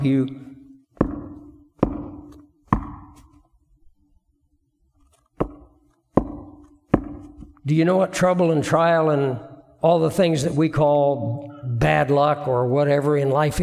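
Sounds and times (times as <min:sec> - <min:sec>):
speech: 0:00.0 - 0:00.5, 0:07.7 - 0:13.6
firm resonant knocking on a door: 0:01.0 - 0:03.2, 0:05.4 - 0:07.6.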